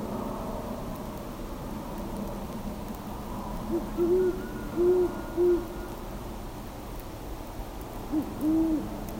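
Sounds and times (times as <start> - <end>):
faint low background noise: 0.0 - 9.1
great horned owl Bubo virginianus hooting: 3.7 - 5.8, 8.1 - 8.9.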